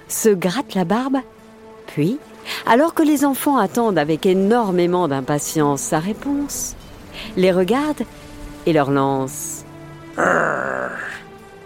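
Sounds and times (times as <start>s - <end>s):
speech: 0.1s - 1.4s, 2.0s - 9.5s, 10.2s - 10.8s
low gruff grunt from a man's voice: 10.2s - 11.2s.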